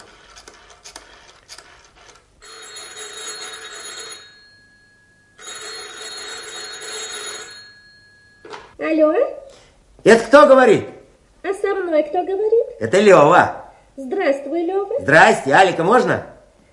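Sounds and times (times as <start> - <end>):
telephone ringing in long buzzing bursts: 0.0 - 8.8
speech: 8.8 - 9.4, 10.0 - 16.3.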